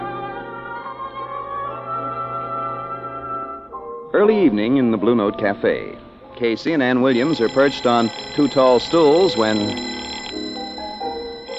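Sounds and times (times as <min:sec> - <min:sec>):
speech: 0:04.1 - 0:09.9
telephone ringing: 0:07.1 - 0:11.5.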